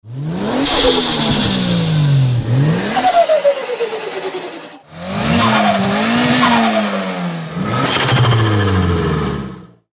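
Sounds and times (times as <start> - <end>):
turbocharger: 0.0 - 9.8.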